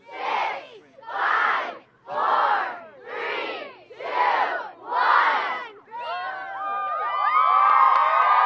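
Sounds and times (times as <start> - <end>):
crowd of students shouting a countdown in unison: 0.0 - 7.0
crowd of students cheering and whooping: 6.0 - 8.4.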